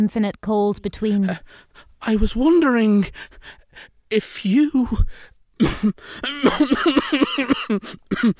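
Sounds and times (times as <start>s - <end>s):
speech: 0.0s - 8.3s
loud throat-clearing coughs: 5.6s - 8.3s.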